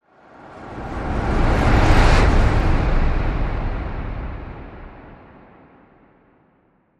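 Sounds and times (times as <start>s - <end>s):
train whoosh at a train station: 0.4s - 5.4s.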